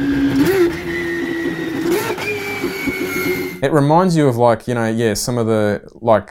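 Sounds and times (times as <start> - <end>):
road car engine revving through paddle-shifted gears: 0.0 - 3.6
speech: 3.6 - 6.2.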